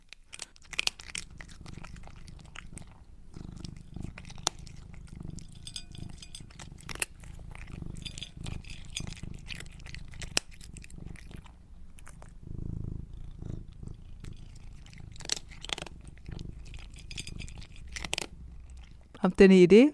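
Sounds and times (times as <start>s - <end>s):
cat crunching dry kibble: 0.0s - 19.2s
speech: 19.3s - 19.9s.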